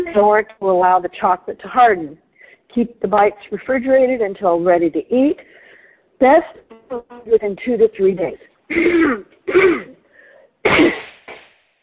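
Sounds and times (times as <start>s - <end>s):
speech: 0.2s - 5.6s, 6.2s - 10.0s, 10.6s - 11.1s
person coughing in harsh bursts: 8.7s - 10.0s.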